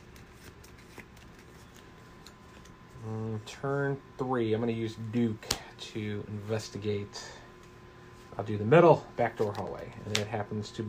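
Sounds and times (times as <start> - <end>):
game cards being shuffled: 0.0 - 2.8, 9.3 - 10.8
speech: 3.0 - 7.4, 8.4 - 10.8.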